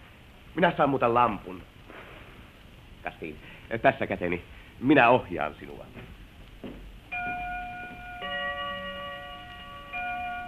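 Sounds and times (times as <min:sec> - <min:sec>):
speech: 0:00.6 - 0:01.7, 0:03.0 - 0:06.8
clock striking twelve: 0:07.1 - 0:10.4.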